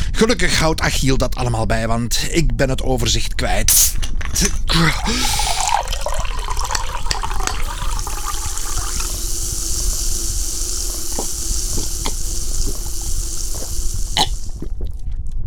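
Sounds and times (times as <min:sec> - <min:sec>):
speech: 0:00.2 - 0:05.6
fizzing of effervescent tablets in water: 0:03.7 - 0:15.3
effervescent tablets splashing into water: 0:03.8 - 0:14.8.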